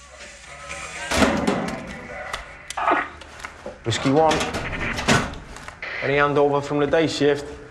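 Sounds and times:
metal locker door slamming shut in a corridor: 0:01.1 - 0:01.8, 0:04.3 - 0:05.4
speech: 0:03.9 - 0:04.7, 0:06.0 - 0:07.6.

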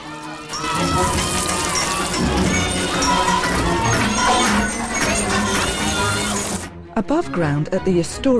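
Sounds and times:
frantic metallic banging on pipes: 0:00.1 - 0:06.7
speech: 0:07.0 - 0:08.3.

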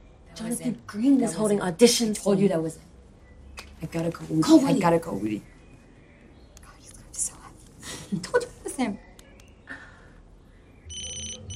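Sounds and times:
speech: 0:00.4 - 0:02.9, 0:03.8 - 0:05.5, 0:08.1 - 0:09.0
telephone ringing in a room: 0:10.9 - 0:11.5.

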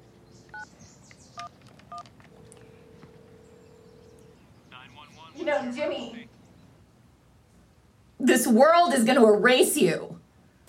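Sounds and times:
low hum: 0:00.0 - 0:10.6
telephone keypad tones: 0:01.4 - 0:04.4
speech: 0:05.4 - 0:06.2, 0:08.3 - 0:10.1.

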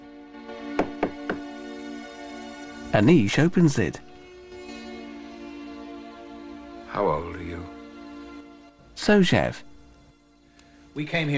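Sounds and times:
knocking on a door: 0:00.7 - 0:01.5
speech: 0:02.9 - 0:04.1, 0:07.0 - 0:07.4, 0:09.0 - 0:09.7, 0:11.0 - 0:11.3.

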